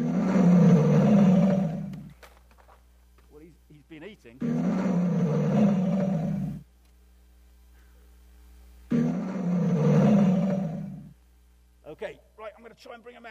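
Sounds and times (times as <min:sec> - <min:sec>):
male lion roaring: 0:00.0 - 0:02.1, 0:04.4 - 0:06.6, 0:08.9 - 0:11.1
speech: 0:12.8 - 0:13.3.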